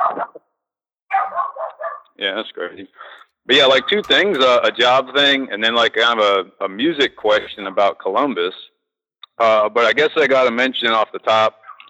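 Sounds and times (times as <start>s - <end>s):
dog barking: 0.0s - 0.4s, 1.1s - 2.2s, 11.6s - 11.8s
speech: 2.2s - 8.7s, 9.4s - 11.8s.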